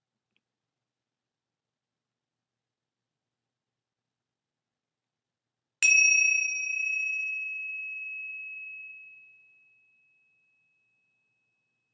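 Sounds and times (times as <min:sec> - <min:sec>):
meditation bell ringing: 0:05.8 - 0:11.9.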